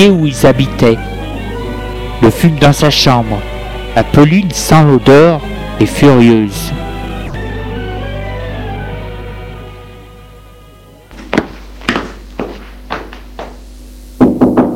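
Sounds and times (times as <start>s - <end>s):
speech: 0.0s - 1.2s, 2.2s - 6.8s
sustained musical drone: 0.0s - 11.8s
solid knocks on a bedroom door: 14.2s - 14.7s.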